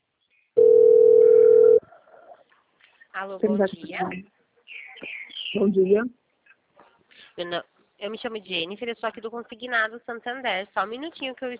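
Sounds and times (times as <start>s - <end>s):
telephone dial tone while placing a call: 0.6s - 1.8s
speech: 3.2s - 4.4s, 5.0s - 6.2s, 7.4s - 11.5s.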